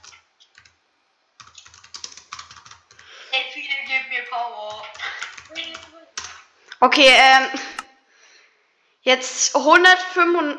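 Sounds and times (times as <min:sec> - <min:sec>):
typing on a computer keyboard into game chat: 0:00.0 - 0:00.8, 0:01.4 - 0:03.1, 0:04.6 - 0:06.4
speech: 0:06.8 - 0:07.6, 0:09.0 - 0:10.5.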